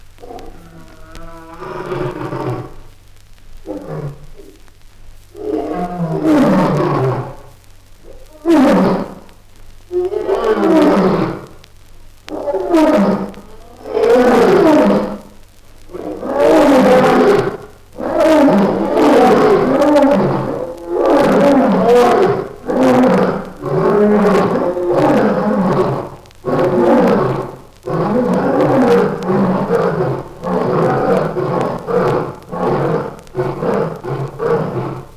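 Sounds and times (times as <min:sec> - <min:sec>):
lion roaring: 0:00.2 - 0:02.9, 0:03.6 - 0:04.6, 0:05.4 - 0:07.5, 0:08.1 - 0:11.6, 0:12.3 - 0:35.1.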